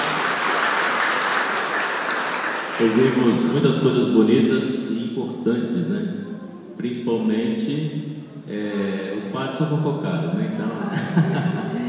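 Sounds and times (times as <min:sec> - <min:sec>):
audience applause at a community gathering: 0:00.0 - 0:03.6
speech: 0:02.8 - 0:11.8
laughter: 0:10.5 - 0:11.8.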